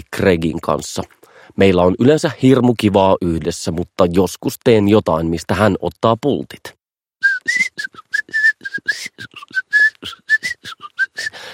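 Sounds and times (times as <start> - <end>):
speech: 0.2 - 6.8, 7.4 - 8.0
person whistling a bouncy tune: 7.2 - 11.5.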